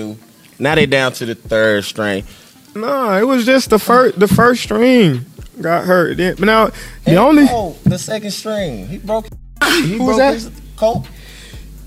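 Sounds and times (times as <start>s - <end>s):
speech: 0.0s - 11.2s
forceful sneeze: 9.6s - 10.2s.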